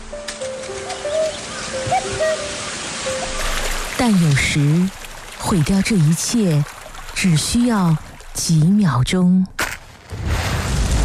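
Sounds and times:
birds calling with short whistled notes in a forest: 0:00.0 - 0:05.4
steady rushing water in a forest: 0:00.0 - 0:09.1
speech: 0:04.0 - 0:09.6.

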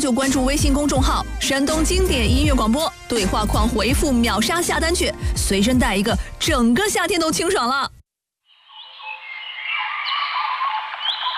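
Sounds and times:
speech: 0:00.0 - 0:08.0
dense chorus of birdsong: 0:08.7 - 0:11.3.

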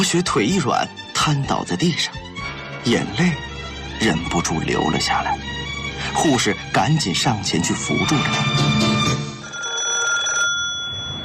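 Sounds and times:
speech: 0:00.0 - 0:05.5, 0:06.1 - 0:09.0
desk telephone electric bell ringing urgently in an office: 0:09.3 - 0:11.2.

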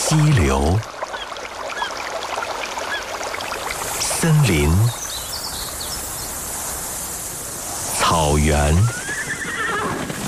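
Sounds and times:
speech: 0:00.1 - 0:01.0, 0:04.2 - 0:05.0, 0:08.2 - 0:09.0
dense hiss of insects in an open field: 0:02.9 - 0:09.8
faint high bird chirps: 0:04.9 - 0:06.5.

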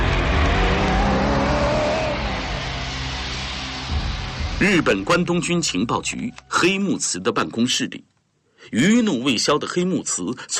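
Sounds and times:
car engine revving as the vehicle drives away: 0:00.0 - 0:05.0
speech: 0:04.6 - 0:10.5.

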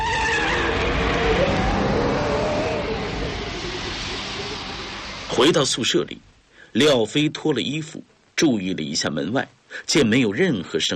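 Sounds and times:
motorcycle riding away: 0:00.0 - 0:05.6
speech: 0:05.4 - 0:10.9.

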